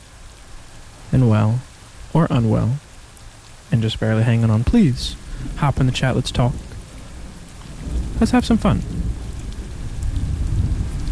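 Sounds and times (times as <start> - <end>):
steady rain: 0.0 - 11.0
speech: 1.1 - 2.9, 3.7 - 6.7, 8.2 - 8.9.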